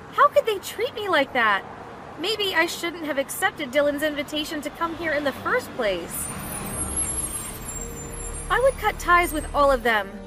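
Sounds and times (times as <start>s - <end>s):
speech: 0.4s - 6.4s, 8.5s - 10.2s
bus engine idling: 5.2s - 10.2s
bus air brakes hissing: 6.4s - 8.6s.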